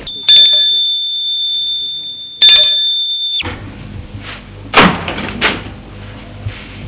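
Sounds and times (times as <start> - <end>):
electric doorbell ringing at a second-floor apartment door: 0.0 - 3.5.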